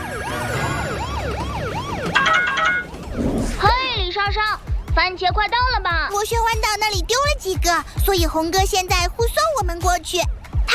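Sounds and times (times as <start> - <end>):
police siren wailing: 0.0 - 6.0, 9.6 - 10.7
speech: 5.0 - 10.4.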